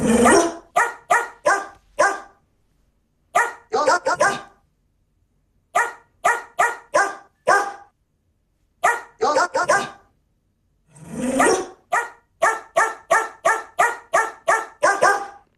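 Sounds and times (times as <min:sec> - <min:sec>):
dog barking the tune of a song: 0:00.2 - 0:02.4, 0:03.4 - 0:04.6, 0:05.8 - 0:07.9, 0:08.8 - 0:10.1, 0:11.4 - 0:15.5.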